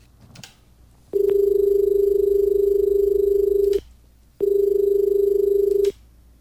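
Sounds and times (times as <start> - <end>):
telephone ringing with long buzzy tones for an incoming call: 1.2 - 3.8, 4.4 - 6.0.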